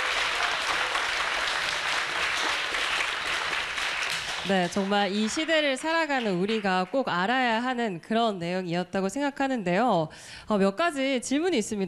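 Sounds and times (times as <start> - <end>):
audience applause after a lecture: 0.0 - 7.0
speech: 4.4 - 11.8.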